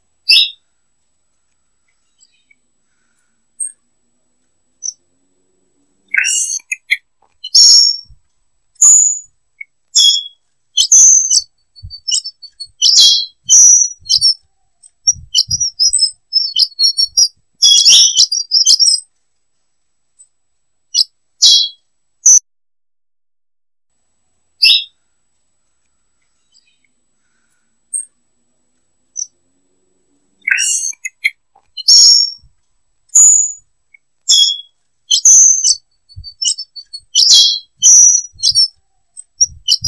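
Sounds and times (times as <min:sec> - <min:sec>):
female Ultramarine Grosbeak chirping: 0:00.2 - 0:00.7, 0:01.8 - 0:03.9, 0:04.7 - 0:05.1, 0:06.0 - 0:08.2, 0:08.8 - 0:19.1, 0:20.9 - 0:22.4, 0:24.6 - 0:25.0, 0:26.2 - 0:28.2, 0:29.1 - 0:29.4, 0:30.4 - 0:32.5, 0:33.1 - 0:39.8.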